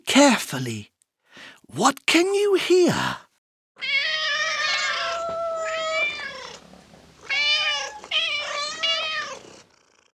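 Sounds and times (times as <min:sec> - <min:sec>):
speech: 0:00.2 - 0:03.9
cats meowing in long drawn-out whining calls: 0:03.8 - 0:09.7.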